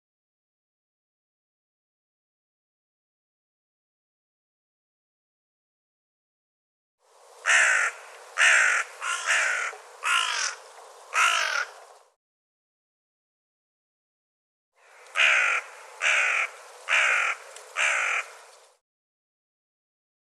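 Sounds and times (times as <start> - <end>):
bird cawing harshly: 7.4 - 11.8, 14.8 - 18.4.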